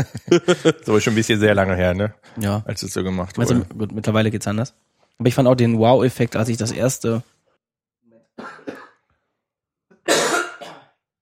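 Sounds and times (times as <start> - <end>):
laughter: 0.0 - 1.2
speech: 0.0 - 7.4
rough gravelly throat clearing: 10.0 - 11.0.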